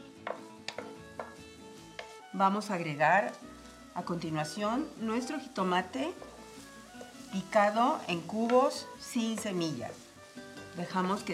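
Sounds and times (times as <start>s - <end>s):
finely chopped onion and garlic sizzling in a frying pan: 0.0s - 11.3s
speech: 2.4s - 6.3s, 7.3s - 10.1s, 10.8s - 11.3s
stirring scrapes in a frying pan: 3.3s - 11.3s.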